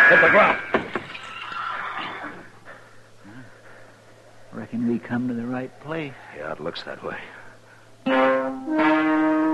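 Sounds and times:
speech: 0:00.1 - 0:00.7, 0:04.6 - 0:07.3, 0:08.1 - 0:09.3
saddled horse whinnying: 0:01.1 - 0:02.6.

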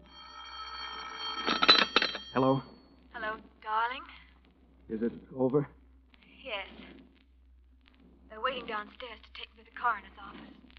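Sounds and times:
telephone bell ringing: 0:00.0 - 0:02.8
speech: 0:02.4 - 0:02.7, 0:04.9 - 0:05.8, 0:08.3 - 0:10.7.

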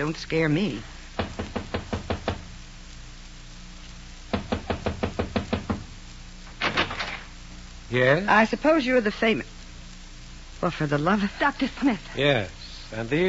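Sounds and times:
speech: 0:00.0 - 0:01.0, 0:07.9 - 0:09.5, 0:10.6 - 0:13.2
firm knocks on a door: 0:01.2 - 0:02.5, 0:04.3 - 0:05.9.

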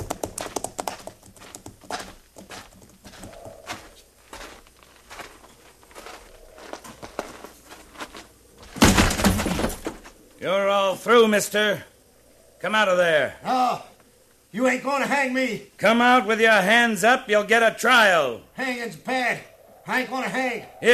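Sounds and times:
several horses' hooves clip-clopping: 0:00.0 - 0:09.9
speech: 0:10.4 - 0:11.9, 0:12.6 - 0:13.9, 0:14.5 - 0:20.9.

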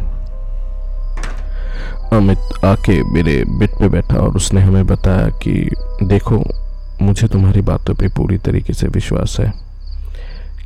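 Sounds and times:
steady low hum: 0:00.0 - 0:10.6
door opened by a roommate with a rattle and faint squeak: 0:01.2 - 0:01.7
speech: 0:02.1 - 0:09.6.

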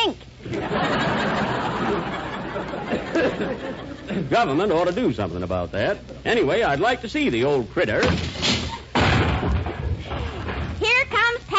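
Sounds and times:
laughter: 0:00.4 - 0:04.5
speech: 0:04.3 - 0:08.4
glass window crashing as someone bursts through: 0:08.0 - 0:10.8
debris clattering: 0:08.0 - 0:10.9.

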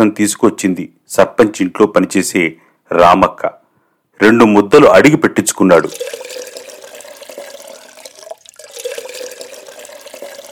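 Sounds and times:
speech: 0:00.0 - 0:03.6, 0:04.2 - 0:06.5
water gushing from a hand pump at a borewell: 0:05.8 - 0:10.5.

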